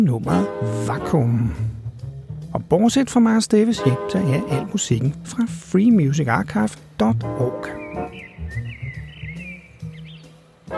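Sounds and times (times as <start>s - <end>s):
speech: 0.0s - 1.7s, 2.5s - 8.7s
low rumble of city noise: 0.0s - 10.7s
blackbirds singing on a summer evening: 7.3s - 10.7s.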